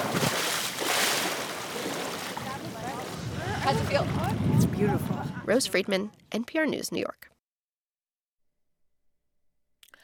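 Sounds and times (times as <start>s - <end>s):
person hopping into water outdoors: 0.0s - 3.2s
broad wash of rushing water: 0.0s - 4.4s
steady surf: 0.0s - 5.6s
wind: 0.0s - 7.4s
speech: 3.7s - 7.3s.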